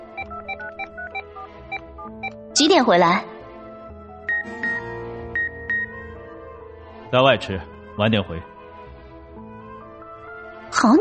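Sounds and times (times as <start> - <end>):
mobile phone keypad beeps while composing a text message: 0.0 - 2.4, 4.3 - 6.0
speech: 2.6 - 3.3, 7.1 - 8.5.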